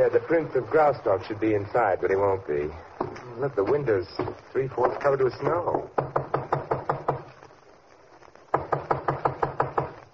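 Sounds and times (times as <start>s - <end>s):
speech: 0.0s - 6.2s
firm rhythmic knocking on a studio door: 5.7s - 7.2s, 8.5s - 10.0s.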